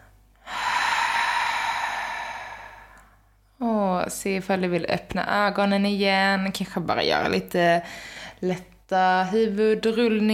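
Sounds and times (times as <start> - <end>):
long exhale: 0.4 - 3.3
speech: 4.0 - 10.3.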